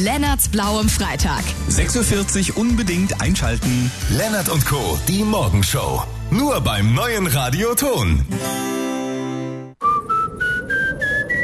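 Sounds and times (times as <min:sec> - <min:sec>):
speech: 0:00.0 - 0:08.8
wind whistling through a gap in a leaky front door: 0:09.8 - 0:11.4.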